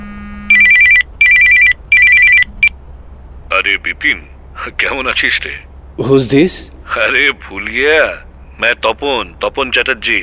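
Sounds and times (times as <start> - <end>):
telephone ringing with electronic trills in a flat in Mumbai: 0.5 - 2.5
speech: 3.7 - 10.2.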